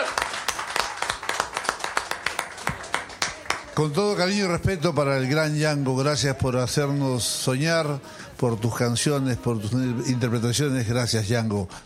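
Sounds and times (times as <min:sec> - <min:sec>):
studio audience clapping rhythmically: 0:00.0 - 0:04.4
speech: 0:03.8 - 0:11.8.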